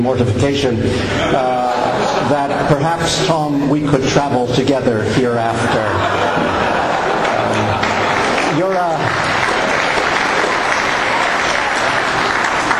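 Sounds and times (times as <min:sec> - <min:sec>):
speech: 0:00.0 - 0:06.8
laughter: 0:00.8 - 0:04.3, 0:04.9 - 0:12.7
large audience applauding: 0:06.2 - 0:12.7.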